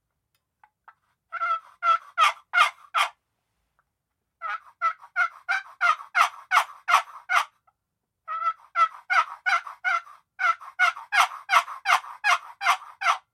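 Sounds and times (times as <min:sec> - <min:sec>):
raspy turkey yelps on a walnut turkey call: 0:01.3 - 0:03.2, 0:04.4 - 0:07.5, 0:08.3 - 0:13.3.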